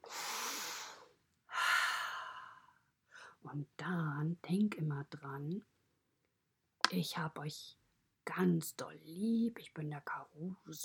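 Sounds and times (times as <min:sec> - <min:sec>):
deep breaths during a guided relaxation exercise: 0:00.0 - 0:03.4
speech: 0:03.5 - 0:05.8, 0:06.9 - 0:10.8.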